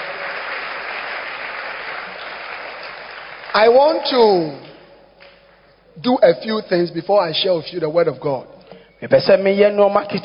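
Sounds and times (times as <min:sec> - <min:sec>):
crowd clapping: 0:00.0 - 0:05.8
speech: 0:03.6 - 0:04.6, 0:06.0 - 0:10.2.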